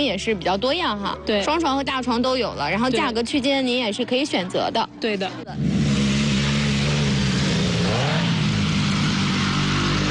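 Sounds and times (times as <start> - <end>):
speech: 0.0 - 5.8
motorcycle engine roaring at a motorcycle campsite: 5.5 - 10.0.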